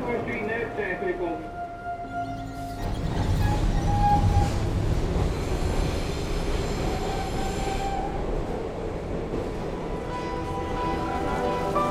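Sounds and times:
subway train running underground to Chinatown: 0.0 - 11.8
subway train high metallic wheel squeals: 2.0 - 4.7.

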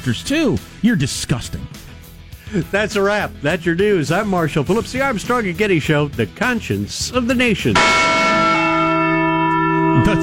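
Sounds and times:
speech: 0.0 - 1.9, 2.5 - 8.2, 10.0 - 10.2
single deep large bell strike: 7.8 - 10.2.

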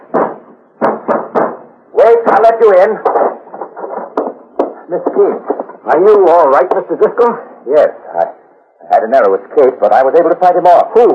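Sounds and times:
heavy booming blows on a locked door being broken down: 0.0 - 4.8
speech: 2.4 - 3.3, 4.9 - 11.1.

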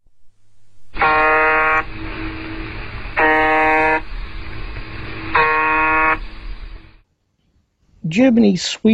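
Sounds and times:
harsh shortwave radio buzzer signal buzzes: 0.9 - 7.0
speech: 8.2 - 8.9.

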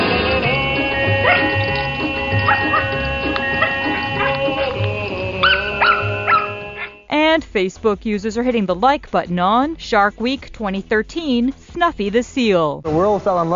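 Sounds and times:
upbeat music: 0.0 - 13.5
dogs barking and yipping while playing with sprinklers: 1.0 - 7.0
speech: 7.6 - 13.5.

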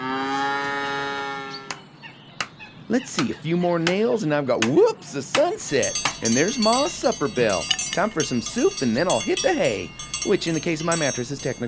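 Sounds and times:
cows mooing as they are let out of a barn: 0.0 - 1.7
speech: 2.9 - 11.6.

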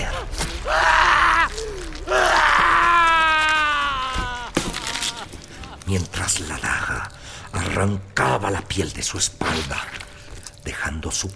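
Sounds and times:
man screaming in pain: 0.0 - 5.8
speech: 7.8 - 10.0, 10.9 - 11.3.

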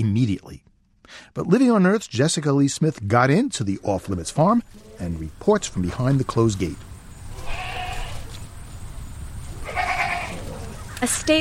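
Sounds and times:
speech: 0.0 - 6.9, 11.0 - 11.3
low outdoor rumble: 1.4 - 11.3
goats and sheep bleating on a farm: 4.7 - 5.2, 7.3 - 8.4, 9.5 - 10.8.

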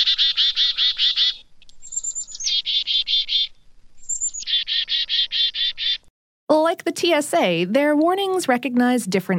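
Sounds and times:
chickadee alarm call: 0.0 - 6.1
speech: 6.7 - 9.3.

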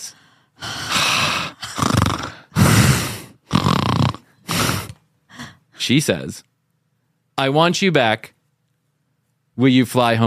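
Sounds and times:
voice imitating heavy raspy breathing into a phone: 0.0 - 5.7
speech: 5.9 - 6.5, 7.4 - 8.4, 9.6 - 10.2.

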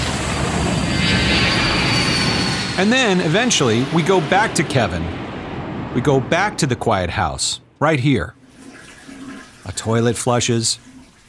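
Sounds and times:
airplane takeoff roar with engine whine: 0.0 - 7.8
speech: 2.8 - 5.2, 6.0 - 8.4, 9.6 - 11.2.

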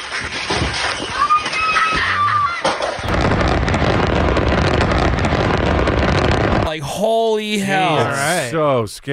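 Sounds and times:
many small commercial-grade fireworks crackling: 0.0 - 8.6
big explosion at a house storing fireworks: 3.0 - 6.8
speech: 7.4 - 9.1.

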